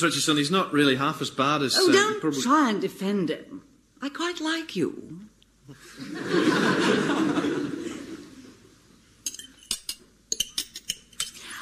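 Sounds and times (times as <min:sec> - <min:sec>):
speech: 0:00.0 - 0:07.4
people chuckling: 0:05.7 - 0:08.6
cutlery clinking and scraping against plates at a dinner: 0:09.2 - 0:11.5.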